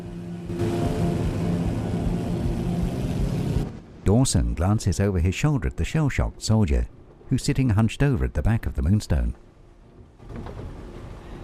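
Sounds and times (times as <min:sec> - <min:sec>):
fighter plane engine roaring, sputtering and revving: 0:00.0 - 0:04.0
speech: 0:04.1 - 0:09.4.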